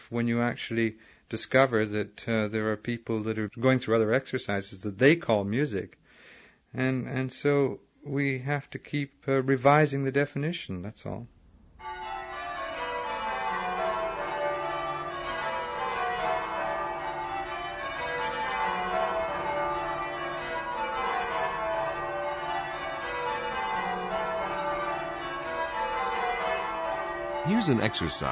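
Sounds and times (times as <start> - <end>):
speech: 0.1 - 6.0, 6.7 - 11.4, 27.6 - 28.2
church tower bells pealing in English change ringing: 11.8 - 28.2.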